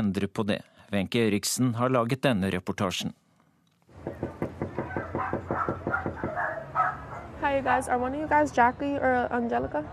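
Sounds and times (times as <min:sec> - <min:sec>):
speech: 0:00.0 - 0:03.2, 0:07.4 - 0:09.9
knocking on a front door: 0:04.0 - 0:06.5.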